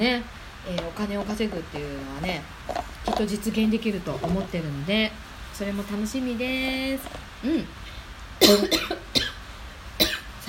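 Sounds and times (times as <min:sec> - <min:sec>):
speech: 0:00.0 - 0:09.0
person coughing and choking: 0:08.4 - 0:09.4, 0:10.0 - 0:10.3.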